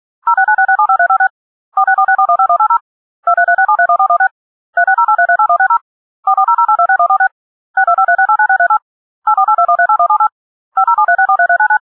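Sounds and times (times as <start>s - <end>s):
DTMF touch-tone dialing: 0.2s - 11.8s.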